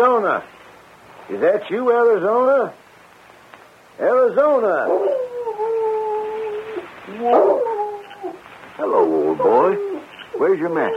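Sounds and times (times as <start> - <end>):
speech: 0.0 - 0.6, 1.3 - 2.8, 4.0 - 5.2, 7.1 - 7.7, 8.8 - 10.9
dog howling: 4.6 - 10.9.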